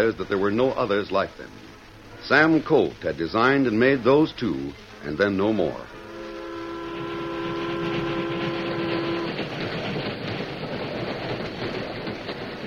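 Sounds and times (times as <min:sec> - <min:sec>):
speech: 0:00.0 - 0:06.0
westbound passenger steam train chugging: 0:00.0 - 0:12.6
passenger steam train whistle: 0:05.6 - 0:09.7.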